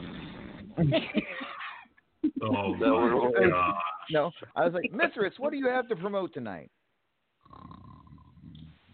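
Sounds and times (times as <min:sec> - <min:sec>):
speech: 0:00.8 - 0:01.3, 0:02.4 - 0:06.8
snoring: 0:07.4 - 0:08.9.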